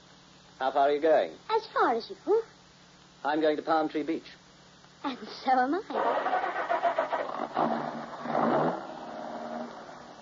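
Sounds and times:
speech: 0:00.6 - 0:02.6, 0:03.2 - 0:04.4, 0:05.0 - 0:06.6
car engine cranking and settling into idle: 0:06.0 - 0:10.2.

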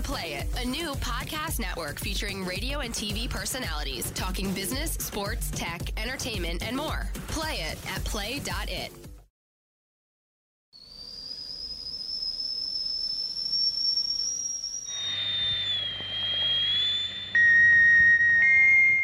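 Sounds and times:
speech: 0:00.1 - 0:09.1
tea kettle whistling at a high pitch: 0:10.8 - 0:19.0
steam hissing from a tea kettle: 0:11.2 - 0:17.3.

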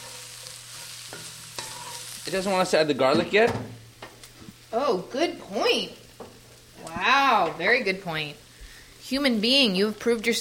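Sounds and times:
stirring scrapes in a pan: 0:00.0 - 0:02.2
ginger and jalapeno pepper sizzling in a pan: 0:00.0 - 0:10.3
speech: 0:02.3 - 0:03.8, 0:04.7 - 0:06.0, 0:06.8 - 0:08.4, 0:09.1 - 0:10.3.

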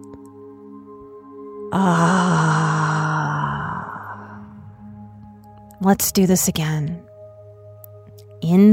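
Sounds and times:
speech: 0:01.7 - 0:02.5, 0:05.8 - 0:07.0, 0:08.5 - 0:08.7
deep breath blown audibly out through the mouth: 0:01.7 - 0:04.7.

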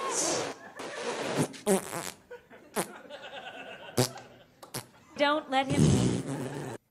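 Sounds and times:
laughter: 0:00.1 - 0:01.6, 0:02.2 - 0:06.8
buzzy sputtering fart noise in a comedy sketch: 0:00.3 - 0:03.0, 0:04.0 - 0:05.0, 0:05.7 - 0:06.8
speech: 0:05.2 - 0:06.6.

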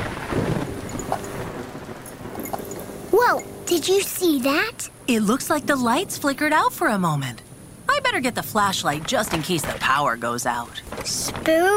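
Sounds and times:
low rumble of thunder: 0:00.0 - 0:03.8, 0:05.0 - 0:11.6
heavy rain pouring: 0:00.0 - 0:04.4
speech: 0:03.3 - 0:07.4, 0:08.0 - 0:11.7.

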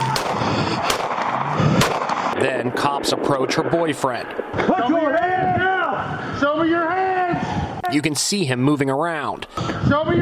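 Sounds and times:
gunshots from police bodycam footage: 0:00.0 - 0:05.2
speech: 0:02.4 - 0:07.0, 0:07.9 - 0:10.1.

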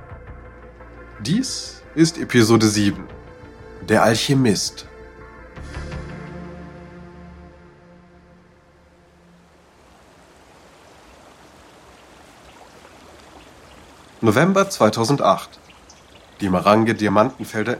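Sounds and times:
speech: 0:01.2 - 0:03.2, 0:03.9 - 0:04.9, 0:14.2 - 0:15.6, 0:16.4 - 0:17.7
river water flowing at the Marange diamond fields in eastern Zimbabwe: 0:08.1 - 0:17.7.

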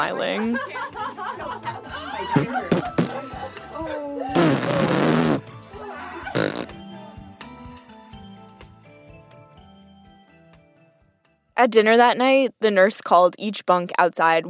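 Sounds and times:
speech: 0:00.0 - 0:03.0, 0:11.6 - 0:14.4
laughter: 0:00.0 - 0:04.0, 0:05.8 - 0:06.6
wet sputtering raspberry sounds blown with the mouth imitating juicy farts: 0:02.4 - 0:03.2, 0:04.3 - 0:05.5, 0:06.3 - 0:06.8.

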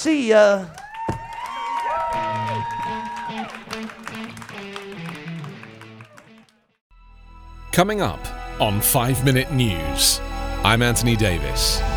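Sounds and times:
speech: 0:00.0 - 0:00.8, 0:07.8 - 0:11.9
people whooping and cheering: 0:00.7 - 0:06.3
audience clapping: 0:00.7 - 0:06.6.

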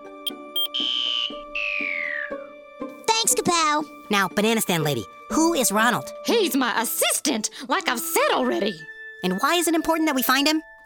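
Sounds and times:
alarm blaring: 0:00.3 - 0:01.7
speech: 0:03.7 - 0:10.8.

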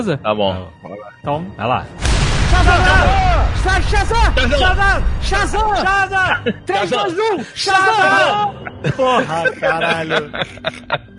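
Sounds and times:
speech: 0:00.0 - 0:11.1
explosion sound effect with heavy low-end booming: 0:02.0 - 0:06.1
laughter: 0:06.0 - 0:11.1.

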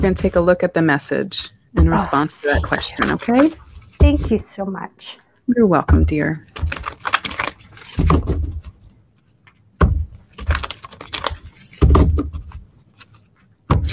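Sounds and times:
speech: 0:00.0 - 0:06.8
deck of cards being shuffled: 0:06.4 - 0:09.6, 0:10.2 - 0:13.6.

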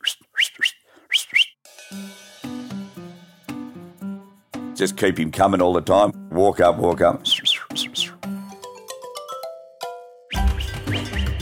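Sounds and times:
sheepdog herding run whistle: 0:00.0 - 0:01.6, 0:07.2 - 0:08.2, 0:10.3 - 0:11.3
speech: 0:04.8 - 0:07.3.

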